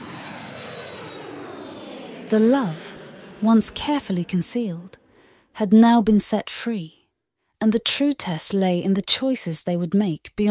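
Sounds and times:
airplane engines humming: 0:00.0 - 0:05.5
speech: 0:02.3 - 0:05.0, 0:05.6 - 0:07.0, 0:07.6 - 0:10.4.

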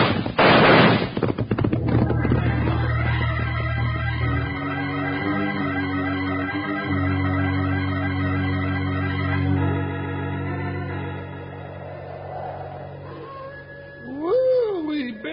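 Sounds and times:
signal gunshot fired to call everyone in: 0:00.0 - 0:02.0
steady tonal background: 0:01.8 - 0:15.3.

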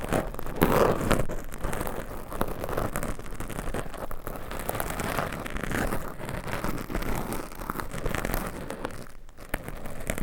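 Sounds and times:
long nails scratching a microphone: 0:00.0 - 0:10.2.

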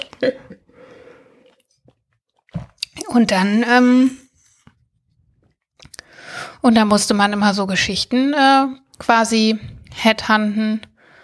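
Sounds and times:
person sipping wine: 0:00.0 - 0:03.0
speech: 0:00.2 - 0:00.5, 0:03.1 - 0:04.2, 0:06.3 - 0:10.9.

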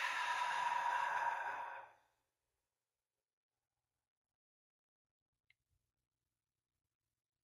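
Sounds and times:
person exhaling softly in a relaxation breathing exercise: 0:00.0 - 0:02.0.

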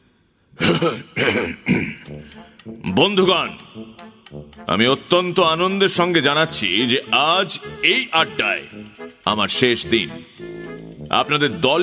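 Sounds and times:
loud throat clearing: 0:00.6 - 0:02.3
speech: 0:00.7 - 0:10.5, 0:11.1 - 0:11.8.

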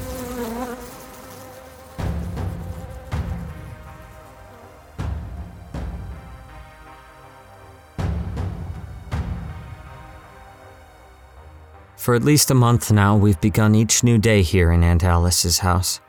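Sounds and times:
swarm of bees buzzing: 0:00.0 - 0:05.6
speech: 0:12.0 - 0:16.0.

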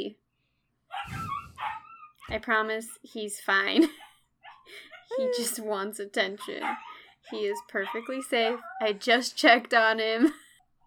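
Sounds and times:
speech: 0:00.0 - 0:00.2, 0:02.3 - 0:04.0, 0:04.7 - 0:10.4
puppy barking with high-pitched yelping barks: 0:00.9 - 0:02.4, 0:06.4 - 0:08.9.

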